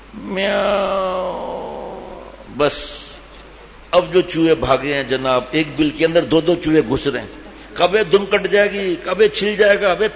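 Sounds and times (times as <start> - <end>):
speech: 0.1 - 1.0, 2.6 - 3.1, 3.9 - 10.1
voice imitating a cat's feeble cry: 0.1 - 2.6.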